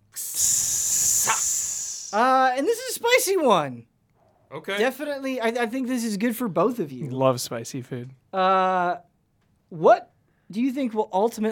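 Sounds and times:
sizzling hiss: 0:00.0 - 0:02.4
speech: 0:02.1 - 0:03.9, 0:04.5 - 0:09.1, 0:09.7 - 0:11.5.

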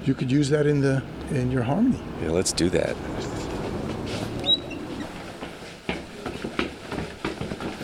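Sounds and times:
speech: 0:00.0 - 0:03.4
fast-moving train rumbling, echoing in an empty loft: 0:02.0 - 0:07.8
train metallic squeals and clanks: 0:04.4 - 0:05.2.

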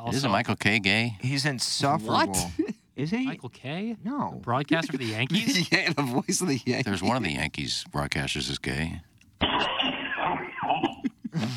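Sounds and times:
speech: 0:00.0 - 0:09.8, 0:11.4 - 0:11.5
laughter: 0:04.8 - 0:06.3
person coughing: 0:09.4 - 0:11.5.

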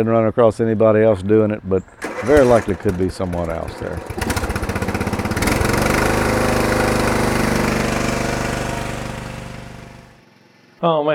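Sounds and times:
speech: 0:00.0 - 0:04.4, 0:10.8 - 0:11.1
riding lawnmower engine running: 0:01.8 - 0:10.2.

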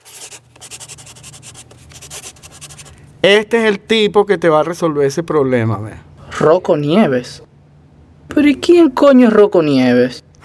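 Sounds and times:
pen writing a name on paper: 0:00.0 - 0:03.0, 0:06.2 - 0:06.7, 0:08.3 - 0:09.0
speech: 0:03.2 - 0:07.5, 0:08.3 - 0:10.2.

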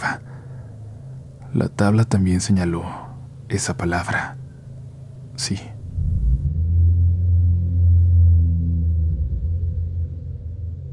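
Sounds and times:
speech: 0:01.5 - 0:04.4, 0:05.4 - 0:05.7
thunder rumbling: 0:05.8 - 0:10.9.

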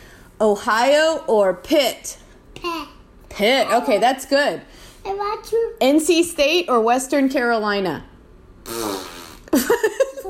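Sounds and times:
speech: 0:00.4 - 0:08.1, 0:08.7 - 0:10.2
loud buzzy fart noise: 0:08.6 - 0:09.7.

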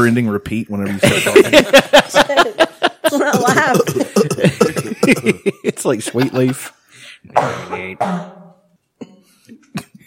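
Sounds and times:
speech: 0:00.0 - 0:03.9, 0:05.1 - 0:08.4
laughter: 0:00.9 - 0:06.8
person coughing: 0:03.3 - 0:05.4, 0:07.4 - 0:09.3
throat noises: 0:03.3 - 0:05.4, 0:07.3 - 0:09.7.

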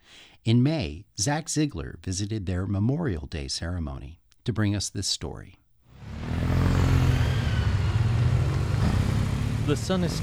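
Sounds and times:
speech: 0:00.4 - 0:06.4, 0:09.7 - 0:10.2
several motorcycle engines idling and revving in an open lot: 0:06.0 - 0:10.2.

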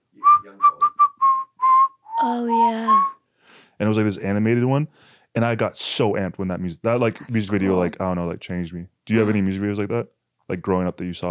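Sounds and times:
person whistling a bouncy pop tune: 0:00.2 - 0:03.2
speech: 0:02.2 - 0:03.1, 0:03.8 - 0:11.3.

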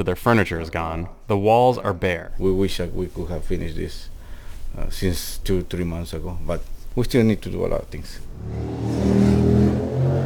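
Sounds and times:
speech: 0:00.0 - 0:04.1, 0:04.7 - 0:09.3
car engine accelerating on a street: 0:08.3 - 0:10.2.

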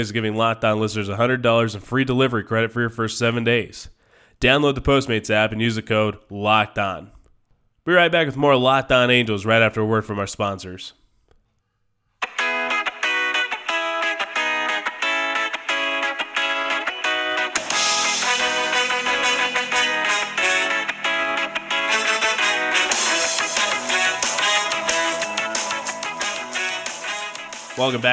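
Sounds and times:
speech: 0:00.0 - 0:07.2, 0:07.8 - 0:11.0, 0:27.8 - 0:28.1
distorted guitar in ska punk tune: 0:12.2 - 0:28.1
ska punk band playing: 0:16.9 - 0:28.1.

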